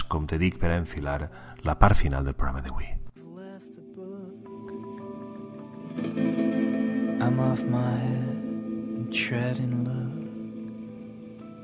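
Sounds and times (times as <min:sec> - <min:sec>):
speech: 0:00.2 - 0:03.0, 0:07.2 - 0:08.3, 0:09.1 - 0:10.0
instrumental passage of a song with echo-heavy tones and plucked accents: 0:03.2 - 0:11.6.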